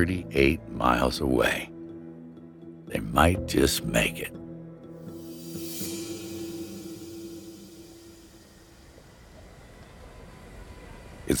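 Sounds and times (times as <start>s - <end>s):
speech: 0.0s - 1.7s, 2.9s - 4.4s
sustained low tonal hum: 5.0s - 10.8s
burst of hissing steam: 5.1s - 9.7s.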